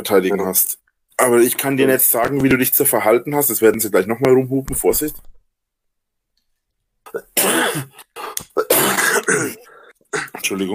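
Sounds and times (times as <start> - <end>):
speech: 0.0 - 5.3, 7.1 - 8.0, 9.3 - 10.7
person sneezing: 7.1 - 10.4.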